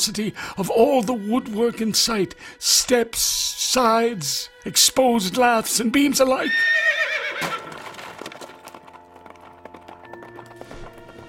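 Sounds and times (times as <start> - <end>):
speech: 0.0 - 7.7
horse whinnying loudly: 6.4 - 7.9
hoofbeats of a startled horse bolting away: 6.8 - 11.2.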